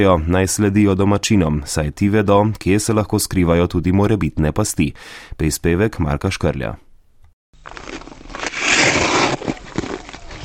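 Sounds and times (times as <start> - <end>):
speech: 0.0 - 6.8
ice skates grinding across ice to a stop: 7.7 - 10.4.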